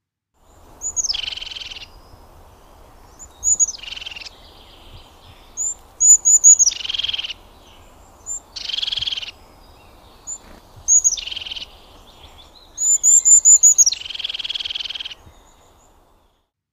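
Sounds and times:
faint hiss: 0.4s - 16.5s
crested tit soft bubbly trilling call: 0.8s - 2.0s, 3.2s - 4.4s, 5.5s - 7.4s, 8.2s - 9.4s, 10.2s - 15.6s.

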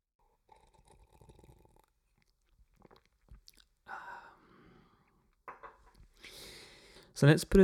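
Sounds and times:
person sipping a turmeric drink: 0.2s - 5.4s
breathy exhale: 3.9s - 5.1s, 6.2s - 7.1s.

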